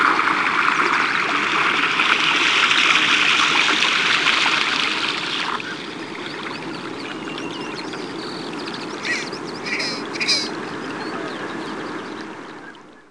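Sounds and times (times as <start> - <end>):
steady rushing water-like background noise: 0.0 - 12.8
Red-breasted Merganser harsh rasping calls: 9.0 - 11.2.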